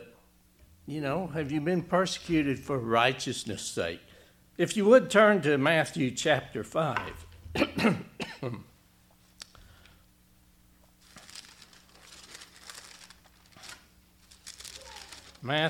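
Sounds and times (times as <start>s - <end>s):
speech: 0.9s - 8.7s, 15.4s - 15.6s
congested person clearing throat: 7.5s - 8.7s
congested person coughing: 7.5s - 8.7s
faint rustling: 10.9s - 15.5s.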